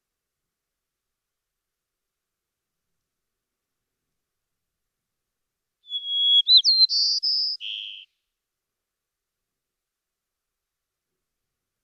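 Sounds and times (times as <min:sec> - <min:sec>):
white-crowned sparrow singing: 0:05.9 - 0:08.0.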